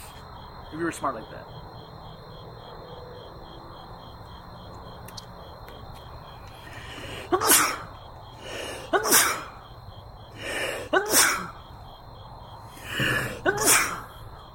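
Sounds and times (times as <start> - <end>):
speech: 0.7 - 1.7
person sneezing: 7.1 - 7.9, 8.6 - 9.6, 10.5 - 11.6, 12.9 - 14.2.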